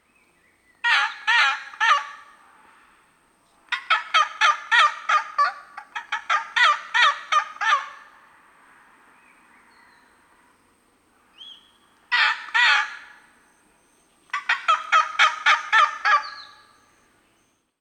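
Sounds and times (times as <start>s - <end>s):
red-throated caracara Ibycter americanus: 0.8s - 2.4s, 3.7s - 8.2s, 11.4s - 13.4s, 14.0s - 17.5s.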